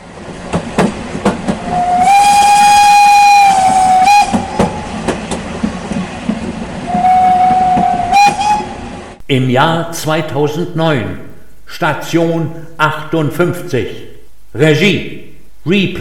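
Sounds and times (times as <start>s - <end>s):
train rumbling and clattering with rhythmic clicks on the rails: 0.0s - 9.2s
steam whistle blast: 1.6s - 4.8s, 6.9s - 8.9s
speech: 9.3s - 14.0s, 14.6s - 15.9s.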